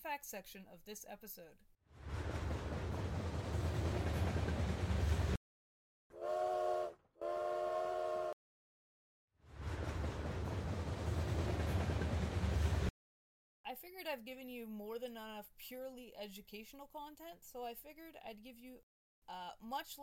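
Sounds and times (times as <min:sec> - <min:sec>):
speech: 0:00.0 - 0:02.4, 0:13.8 - 0:20.0
train rumbling along the rails: 0:02.0 - 0:05.4, 0:09.5 - 0:12.9
long train whistle blasts: 0:06.1 - 0:08.4.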